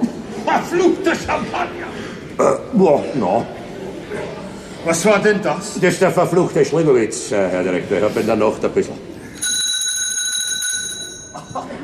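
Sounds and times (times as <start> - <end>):
laughter: 0.0 - 2.3, 11.2 - 11.8
speech: 0.5 - 9.1
bell ringing with rapid rattling: 9.4 - 11.8.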